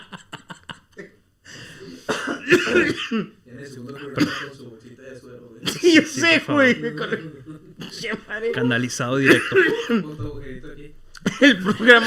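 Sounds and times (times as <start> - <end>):
laughter: 0.0 - 1.2, 5.7 - 10.2, 11.2 - 12.0
coughing: 1.9 - 4.7, 5.6 - 8.6, 9.2 - 10.2, 11.2 - 12.0
speech: 2.5 - 12.0.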